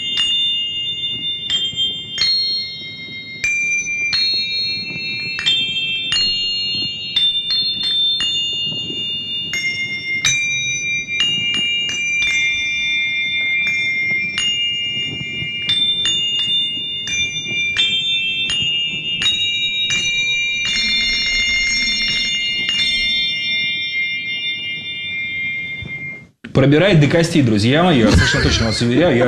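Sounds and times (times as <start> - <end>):
small bells ringing: 0.0 - 29.2
speech: 26.6 - 29.2.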